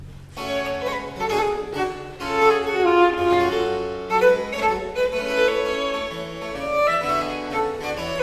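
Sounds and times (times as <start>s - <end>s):
gavotte music: 0.0s - 8.2s.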